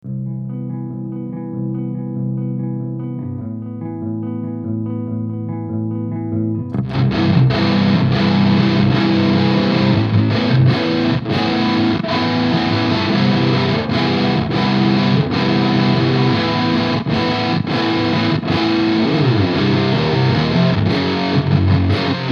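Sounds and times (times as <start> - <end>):
grunge music: 0.0 - 22.2.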